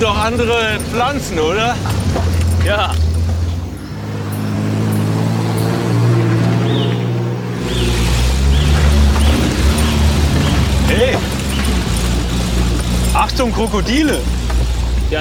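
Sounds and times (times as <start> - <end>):
speech: 0.0 - 3.1, 13.2 - 14.4, 15.1 - 15.2
car engine humming inside a moving car in Australia: 0.0 - 15.2
road noise inside a moving car in Australia: 0.0 - 15.2.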